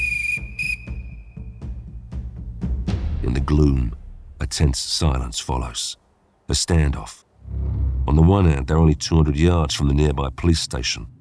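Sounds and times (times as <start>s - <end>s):
police whistle blown by a police constable: 0.0s - 1.6s
low rumbling: 0.1s - 6.4s, 7.2s - 11.1s
speech: 3.3s - 7.2s, 8.0s - 11.1s.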